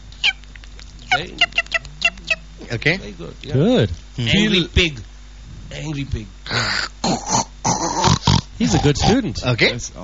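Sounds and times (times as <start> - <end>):
person vocally imitating a bird call: 1.0 - 2.7, 6.5 - 9.1
speech: 1.2 - 1.6, 2.6 - 5.1, 5.7 - 7.4, 8.6 - 10.0.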